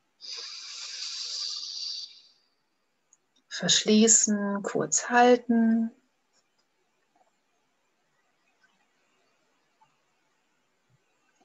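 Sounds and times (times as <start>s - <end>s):
slow inhale through the right nostril during alternate-nostril breathing: 0.2s - 2.5s
speech: 3.6s - 6.0s.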